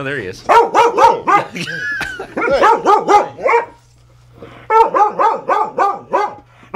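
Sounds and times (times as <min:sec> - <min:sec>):
speech: 0:00.0 - 0:03.8
steady low hum: 0:00.0 - 0:06.7
dog barking: 0:00.5 - 0:01.6, 0:02.4 - 0:03.8, 0:04.7 - 0:06.7
laughter: 0:01.3 - 0:02.9.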